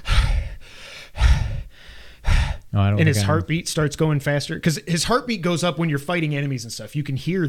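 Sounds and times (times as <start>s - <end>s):
person imitating panting of an out-of-breath video game character: 0.0s - 3.4s
speech: 2.7s - 7.4s.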